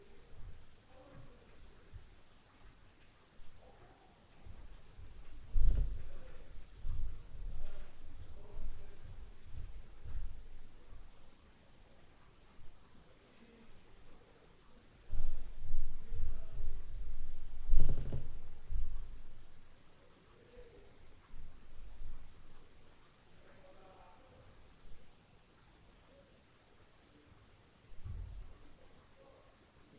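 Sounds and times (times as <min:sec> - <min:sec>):
low frequency noise from upstairs at night: 0:00.0 - 0:29.9.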